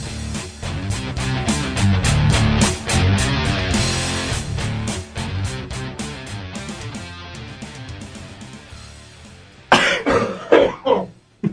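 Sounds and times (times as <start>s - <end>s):
music: 0.0s - 10.9s
several people coughing loudly: 9.7s - 11.5s.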